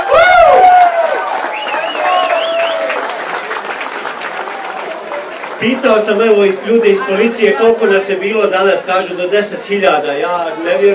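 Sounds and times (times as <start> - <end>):
large crowd applauding at a charity gathering for children in Visoko: 0.0 - 7.3
speech: 5.6 - 10.9.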